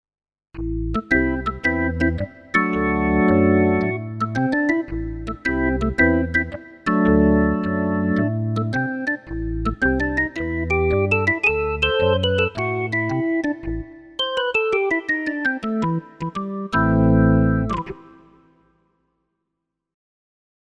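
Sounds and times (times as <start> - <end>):
organ: 0.6 - 18.3.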